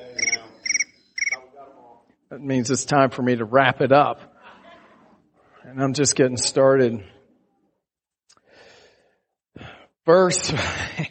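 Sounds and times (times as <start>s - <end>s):
crickets chirping: 0.0s - 1.4s
speech: 2.3s - 4.3s, 5.7s - 7.2s, 10.1s - 11.0s.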